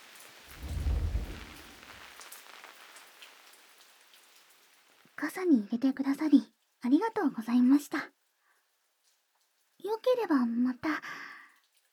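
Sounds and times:
heavy rain pouring down: 0:00.0 - 0:05.2
deep low rumble: 0:00.5 - 0:02.1
speech: 0:05.2 - 0:08.2, 0:09.8 - 0:11.3.

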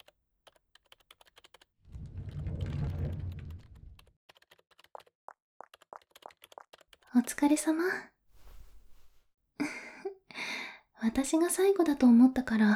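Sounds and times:
typing on a computer keyboard in an office: 0:00.0 - 0:01.7, 0:04.3 - 0:07.0
low rumbling noise: 0:01.9 - 0:04.0
speech: 0:07.2 - 0:08.1, 0:11.0 - 0:12.7.

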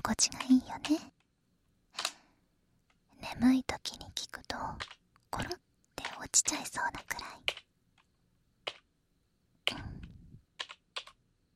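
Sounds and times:
speech: 0:00.1 - 0:01.1, 0:03.4 - 0:05.6, 0:06.3 - 0:07.6
computer keyboard clicks: 0:04.8 - 0:05.0, 0:07.4 - 0:08.9, 0:09.7 - 0:11.2.

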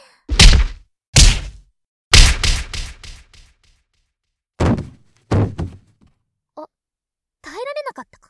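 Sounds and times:
body of a person knocked down by punches collapsing to the floor: 0:00.3 - 0:01.6, 0:04.6 - 0:05.9.

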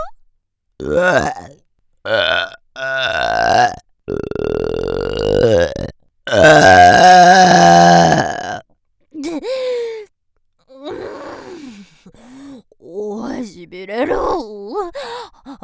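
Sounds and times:
speech: 0:00.8 - 0:04.3, 0:06.4 - 0:07.1
very loud long croaking burps and groaning belches: 0:00.8 - 0:08.6.

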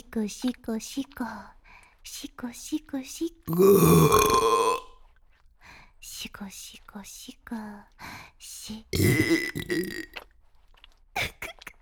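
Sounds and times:
speech: 0:00.2 - 0:04.6, 0:06.3 - 0:10.0
loud burp: 0:03.5 - 0:04.9, 0:09.0 - 0:10.2.

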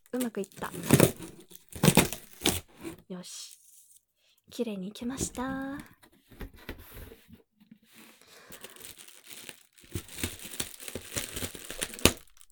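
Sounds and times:
speech: 0:00.1 - 0:01.4, 0:03.1 - 0:03.6, 0:04.5 - 0:06.0
cardboard and packaging crinkling and tearing: 0:00.1 - 0:03.0, 0:08.0 - 0:12.5.

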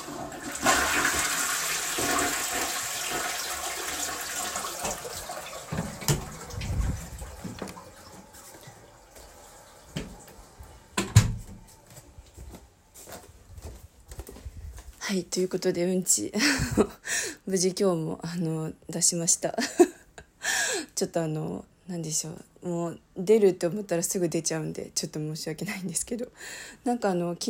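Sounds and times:
water gurgling and trickling as the toilet bowl refills: 0:00.0 - 0:10.6
toilet flushing: 0:00.0 - 0:11.2
speech: 0:15.1 - 0:19.9, 0:21.0 - 0:27.4.

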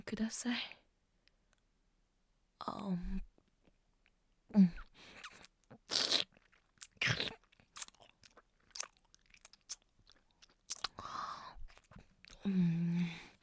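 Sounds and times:
speech: 0:00.1 - 0:00.8, 0:02.6 - 0:03.3, 0:04.5 - 0:05.2, 0:12.4 - 0:12.9
wet chewing and crunchy bites: 0:05.2 - 0:11.0, 0:11.7 - 0:12.4.

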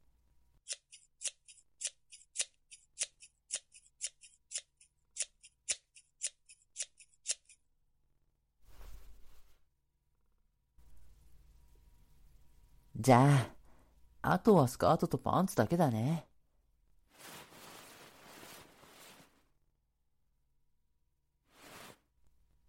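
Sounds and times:
scissors cutting through clothing fabric: 0:00.6 - 0:07.7
soft rustling: 0:08.6 - 0:09.7, 0:17.0 - 0:19.6
speech: 0:13.0 - 0:13.5, 0:14.3 - 0:16.3.

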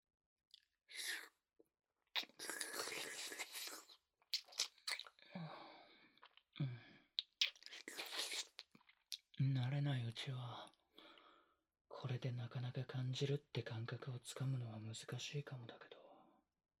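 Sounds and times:
wet licking and sucking mouth sounds: 0:02.2 - 0:05.2, 0:07.2 - 0:09.4
speech: 0:09.4 - 0:10.8, 0:12.0 - 0:16.0.

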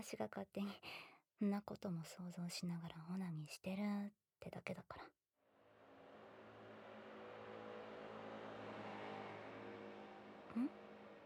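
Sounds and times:
speech: 0:00.0 - 0:05.2, 0:10.6 - 0:10.8
motorbike passing on a nearby road: 0:05.6 - 0:11.2.

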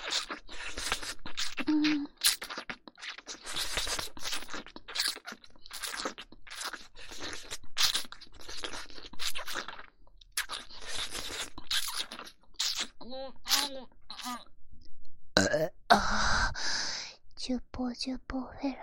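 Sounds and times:
soft mouth clicks and smacking noises: 0:00.0 - 0:14.5
wet burps: 0:15.4 - 0:15.8
speech: 0:17.5 - 0:18.8.

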